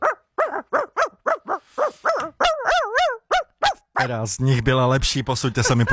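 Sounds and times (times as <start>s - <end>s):
person imitating dog with yapping barks and whines: 0.0s - 4.2s
speech: 4.0s - 5.9s
laughter: 5.4s - 5.9s.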